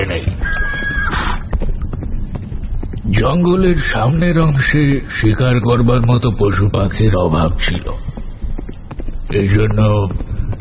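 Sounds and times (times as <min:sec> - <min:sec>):
horse hooves clip-clopping on a hunting ride: 0:00.0 - 0:10.5
steady noise: 0:00.0 - 0:10.5
horse whinnying: 0:00.4 - 0:01.5
speech: 0:03.2 - 0:08.1, 0:09.3 - 0:10.3.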